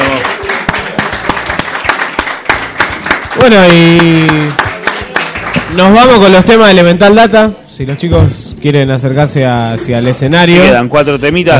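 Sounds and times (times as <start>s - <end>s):
audience applause at an acoustic live music event: 0.0s - 6.2s
crowd noise: 0.0s - 11.5s
speech: 3.4s - 4.6s, 5.8s - 11.5s.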